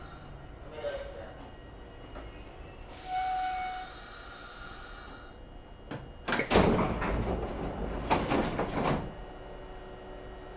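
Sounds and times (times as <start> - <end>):
train sliding doors rumbling shut: 1.4 - 9.3.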